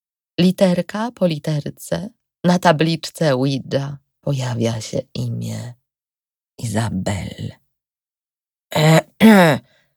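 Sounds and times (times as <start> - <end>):
speech: 0.4 - 5.8, 6.6 - 7.6, 8.7 - 9.7
throat clearing: 8.7 - 9.8.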